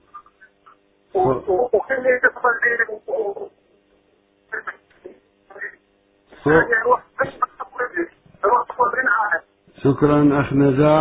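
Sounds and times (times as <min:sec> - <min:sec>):
person speaking over a telephone line with thin muffled voice: 0:01.1 - 0:03.6, 0:04.5 - 0:10.9
speech: 0:09.8 - 0:10.9.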